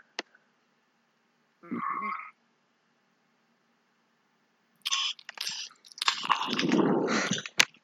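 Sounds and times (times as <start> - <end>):
munching and crunching: 4.8 - 7.7.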